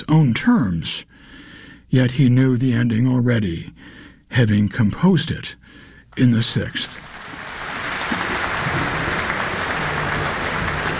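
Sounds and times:
speech: 0.0 - 7.2
large concert audience applause: 7.0 - 10.9.

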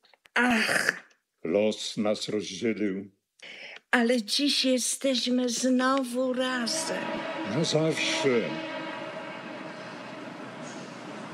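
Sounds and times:
speech: 0.4 - 8.7
train rumbling with rolling carriages: 6.5 - 11.3
faint high squeal: 6.6 - 11.3.

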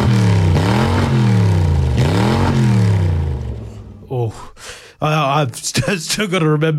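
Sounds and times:
car engine revving: 0.0 - 4.1
speech: 5.0 - 6.7.

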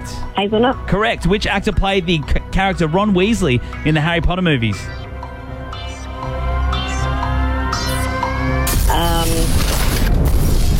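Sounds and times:
speech: 0.4 - 5.1
steady tones and rising pitched lines in a quiz game: 4.5 - 9.0
bomb explosion sound effect in a quiz game: 8.7 - 10.7.

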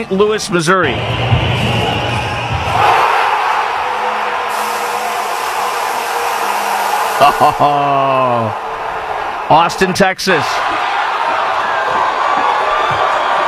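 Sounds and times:
speech: 0.0 - 1.7, 7.2 - 8.6, 9.5 - 10.9
huge crowd in St. Louis Missouri screaming and cheering celebrating a win: 0.8 - 13.4
laughter: 7.1 - 8.6.

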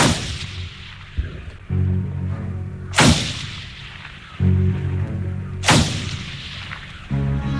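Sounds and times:
loud booming gunshots echoing: 0.0 - 1.7, 2.9 - 4.4, 5.6 - 7.1
low sustained droning tone: 1.1 - 3.0, 4.3 - 6.4.

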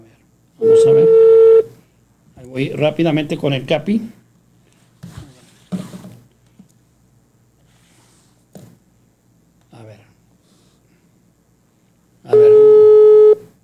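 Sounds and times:
telephone busy tone: 0.6 - 1.7, 12.3 - 13.4
speech: 2.5 - 4.2.

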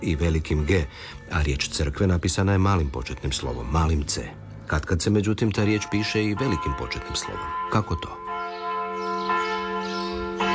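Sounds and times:
speech: 0.0 - 8.2
church bells ringing: 2.2 - 10.5.

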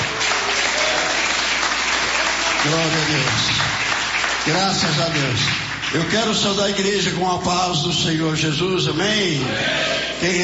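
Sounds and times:
church congregation clapping hands joyfully: 0.0 - 8.2
speech: 2.6 - 3.7, 4.5 - 10.4.

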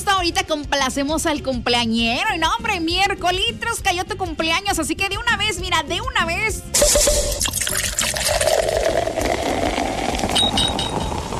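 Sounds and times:
speech: 0.2 - 8.4
bottle opening: 6.8 - 11.3
drink pouring into a glass: 6.8 - 11.3.

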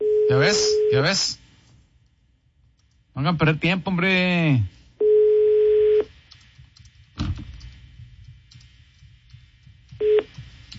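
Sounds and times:
low noise: 0.0 - 10.7
speech: 0.3 - 1.4, 3.2 - 4.8
steady electronic telephone ringback tone: 5.0 - 6.1, 10.0 - 10.3.

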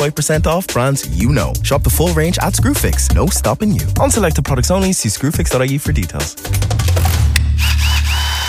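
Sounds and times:
speech: 0.0 - 7.0
power drill whirring with deep motor hum: 7.1 - 8.4.

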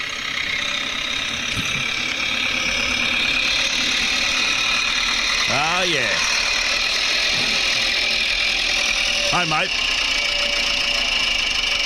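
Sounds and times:
small tractor engine running with a rough knocking chug and a bright mechanical whine: 0.0 - 11.8
speech: 9.4 - 9.9.

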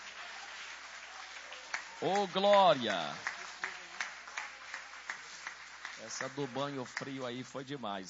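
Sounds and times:
crowd clapping: 0.0 - 8.0
speech: 2.0 - 3.3, 6.0 - 8.0.

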